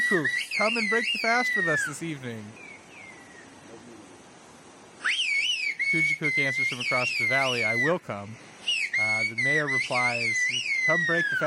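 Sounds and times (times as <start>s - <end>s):
faint whistle of Turkish whistled language gliding downward: 0.0s - 2.0s, 5.0s - 8.0s, 8.6s - 11.4s
speech: 0.1s - 2.7s, 5.9s - 11.4s.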